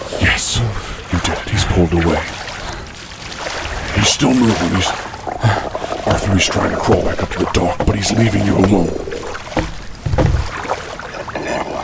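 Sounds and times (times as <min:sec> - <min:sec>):
small rowboat splashing and sloshing through water: 0:00.0 - 0:11.8
speech: 0:01.8 - 0:02.4, 0:04.0 - 0:09.2
low thump of a rowboat: 0:08.6 - 0:10.7.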